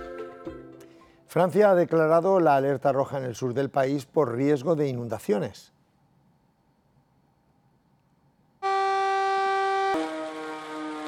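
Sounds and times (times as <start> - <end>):
speech: 1.3 - 5.8
warning siren alerting town population: 8.6 - 11.0.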